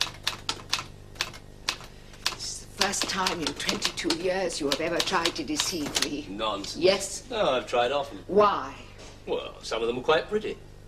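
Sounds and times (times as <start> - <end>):
typewriter keystrokes: 0.0 - 6.8
speech: 2.8 - 10.6.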